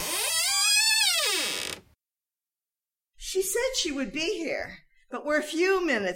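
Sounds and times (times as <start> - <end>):
door creaking open: 0.0 - 2.0
speech: 3.8 - 6.1.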